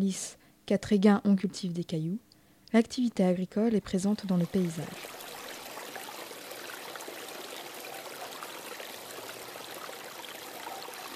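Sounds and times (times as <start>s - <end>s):
speech: 0.0s - 5.2s
small coastal river flowing into a cove: 4.3s - 11.1s.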